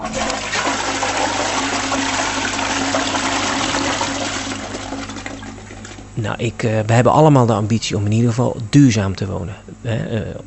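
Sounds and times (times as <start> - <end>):
toilet flushing with purified water: 0.0 - 6.2
speech: 6.2 - 10.4.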